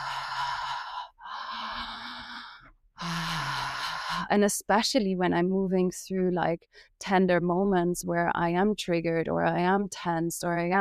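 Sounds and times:
person breathing in and out through the mouth as morning breathing practice: 0.0 - 4.3
speech: 4.3 - 10.7.

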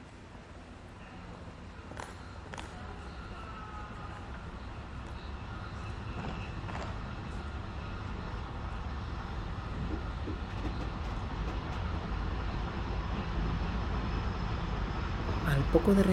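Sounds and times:
night train rolling through a station: 0.0 - 16.1
faint rattling from train cars: 8.0 - 16.1
speech: 15.7 - 16.1.

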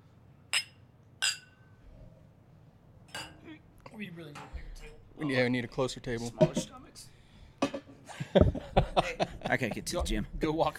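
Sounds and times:
glasses clinking together in a toast: 0.5 - 1.8, 3.1 - 3.4
speech: 4.0 - 7.1, 8.4 - 10.7
laughter: 8.1 - 10.2.

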